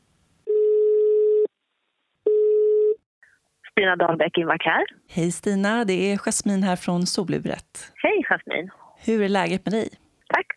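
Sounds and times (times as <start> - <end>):
telephone ringing tone on an outgoing call: 0.4 - 1.5, 2.3 - 3.0
speech: 3.8 - 10.5.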